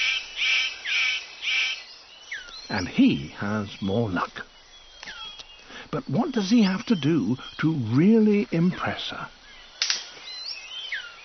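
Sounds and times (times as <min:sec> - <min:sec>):
male superb bird of paradise calling to attract a female: 0:00.0 - 0:01.8
speech: 0:02.7 - 0:04.5, 0:05.9 - 0:09.4.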